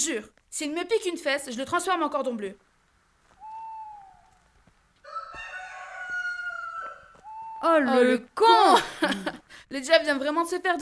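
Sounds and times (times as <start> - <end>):
speech: 0.0 - 2.7, 7.6 - 10.8
rooster crowing: 3.4 - 4.4, 5.0 - 7.7.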